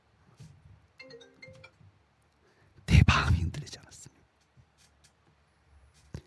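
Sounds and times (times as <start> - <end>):
phone notification ringtone through a connected speaker: 1.0 - 1.8.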